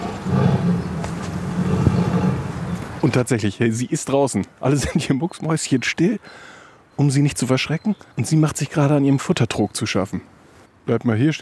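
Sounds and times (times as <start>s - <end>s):
tigress in an enclosure roaring and growling: 0.0s - 3.1s
speech: 3.0s - 11.4s.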